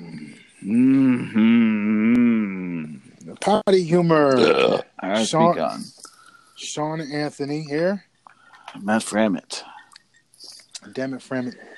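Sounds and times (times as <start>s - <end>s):
loud guttural burp: 0.0s - 3.0s, 4.2s - 5.0s
speech: 0.6s - 1.6s, 3.4s - 6.0s, 6.6s - 8.1s, 8.7s - 9.7s, 10.9s - 11.7s.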